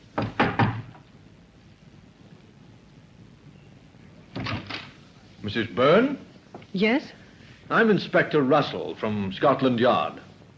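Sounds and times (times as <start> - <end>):
sharp knocking on the door of a small flat: 0.2 - 1.0
speech: 5.4 - 10.2.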